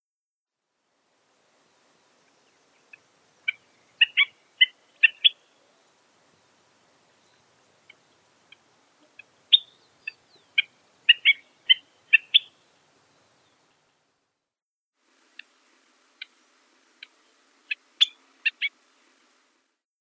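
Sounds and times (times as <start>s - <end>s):
Pseudocolopteryx flaviventris calling: 2.1s - 13.9s, 17.0s - 18.8s.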